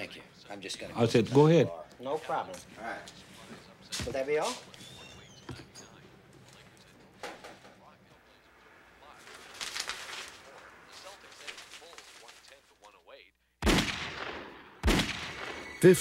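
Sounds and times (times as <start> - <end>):
speech: 0.0 - 3.3, 4.0 - 4.7, 15.8 - 16.0
rumbling noise: 1.8 - 13.3
gunshots: 13.6 - 15.9.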